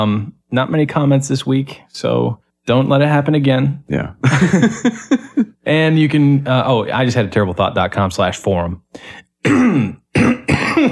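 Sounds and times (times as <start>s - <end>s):
speech: 0.0s - 10.9s
harsh raspy coughing: 9.4s - 10.9s
throat clearing: 9.4s - 10.9s.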